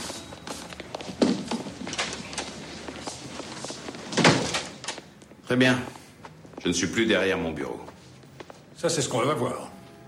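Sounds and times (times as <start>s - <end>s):
faint shuffling movement: 0.0s - 4.2s, 5.0s - 9.3s
door pushed shut with a solid thud: 4.1s - 4.7s
speech: 5.5s - 6.0s, 6.6s - 7.9s, 8.8s - 9.7s.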